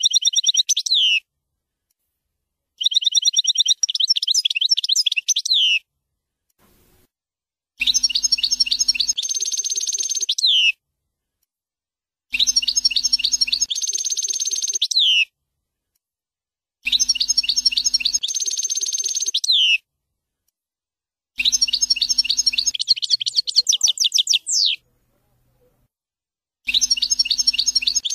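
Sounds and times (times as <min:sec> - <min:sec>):
European goldfinch song: 0:00.0 - 0:01.3, 0:02.8 - 0:05.9, 0:07.8 - 0:10.8, 0:12.3 - 0:15.3, 0:16.8 - 0:19.8, 0:21.4 - 0:24.9, 0:26.6 - 0:28.1.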